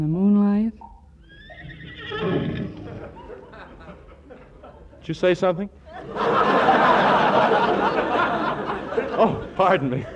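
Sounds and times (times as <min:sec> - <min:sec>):
horse whinnying on green grass in moonlight: 0:01.2 - 0:03.0
laughter: 0:02.8 - 0:05.2, 0:05.9 - 0:10.1
speech: 0:05.1 - 0:06.5, 0:09.2 - 0:10.1.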